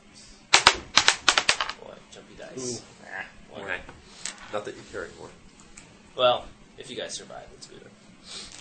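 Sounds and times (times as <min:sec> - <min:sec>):
dice clattering across a hard table: 0:00.6 - 0:01.8
speech: 0:02.6 - 0:02.9, 0:06.2 - 0:08.4.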